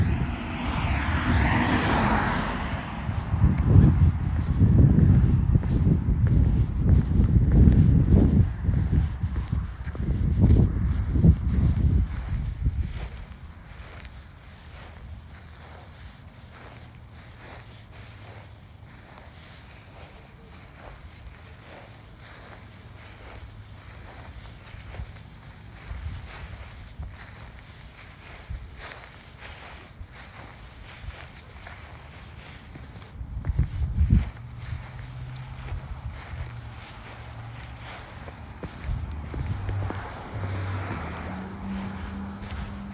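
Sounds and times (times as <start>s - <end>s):
heavy rumble in an outdoor spring scene: 0.0s - 14.1s, 32.9s - 42.9s.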